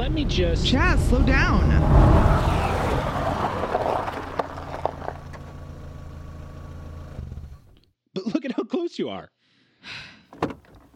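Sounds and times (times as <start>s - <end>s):
car engine rumble inside a moving car: 0.0s - 7.8s
road noise inside a moving car: 0.0s - 7.8s
speech: 0.1s - 2.7s, 9.0s - 10.0s.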